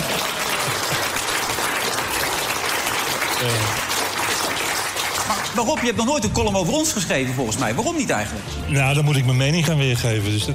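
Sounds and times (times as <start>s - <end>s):
crowd applauding: 0.0s - 6.0s
speech: 3.4s - 3.9s, 5.6s - 10.5s.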